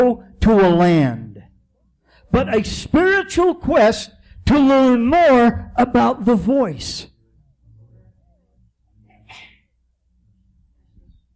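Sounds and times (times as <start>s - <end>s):
speech: 0.0s - 1.2s, 2.3s - 7.1s
person sneezing: 9.1s - 9.7s.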